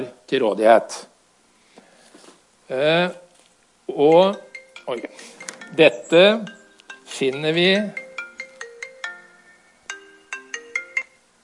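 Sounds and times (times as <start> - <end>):
speech: 0.0 - 1.1, 2.7 - 3.2, 3.9 - 8.0
phone ringtone with a bright bell-like melody of plucked notes: 4.0 - 11.3.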